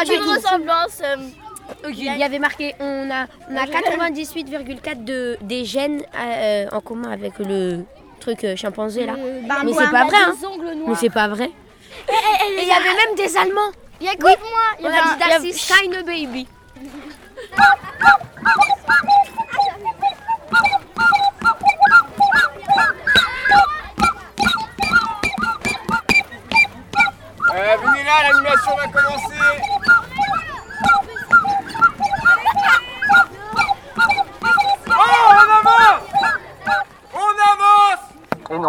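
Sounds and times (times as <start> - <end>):
speech: 0.0 - 19.1, 28.1 - 29.9
laughter: 11.8 - 13.1, 16.7 - 37.0
elephant trumpeting: 17.6 - 36.9.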